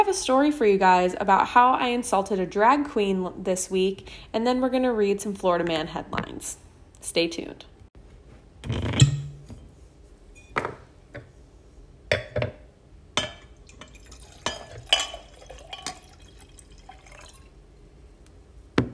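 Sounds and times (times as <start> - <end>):
speech: 0.0 - 7.7, 8.6 - 9.1
glass clinking: 8.7 - 9.6, 10.3 - 10.8, 13.2 - 17.5
drips: 13.4 - 17.6
wine glugging into a glass: 13.6 - 17.6.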